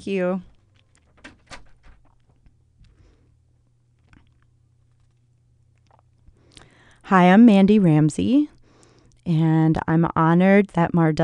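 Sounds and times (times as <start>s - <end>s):
speech: 0.0s - 0.5s, 7.1s - 8.6s, 9.3s - 11.2s
steady low hum: 0.0s - 11.2s
door swinging shut: 1.1s - 2.1s.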